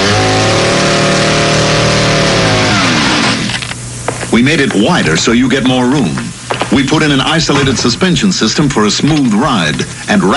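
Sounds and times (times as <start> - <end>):
conventional small car engine revving: 0.0 - 3.6
speech: 4.4 - 10.3.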